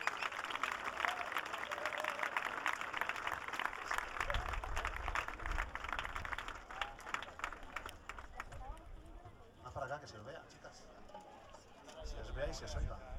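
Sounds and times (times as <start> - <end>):
audience applause: 0.0 - 8.8
speech: 10.0 - 10.9, 12.2 - 13.1.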